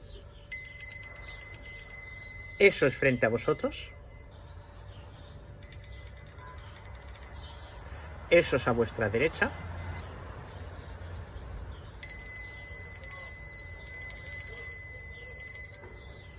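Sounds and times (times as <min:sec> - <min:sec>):
small bells jingling: 0:00.0 - 0:09.6, 0:12.0 - 0:16.3
speech: 0:02.6 - 0:04.0, 0:08.3 - 0:09.7.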